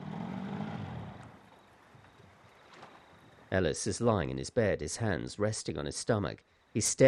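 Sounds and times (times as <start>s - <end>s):
small flat-bottom boat's low motor hum: 0.0s - 3.5s
soft outdoor breeze: 0.0s - 7.0s
speech: 3.5s - 7.0s.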